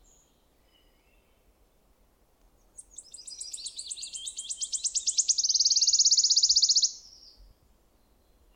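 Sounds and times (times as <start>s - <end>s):
Wood warbler song of ticking notes into an accelerating trill: 2.8s - 7.4s.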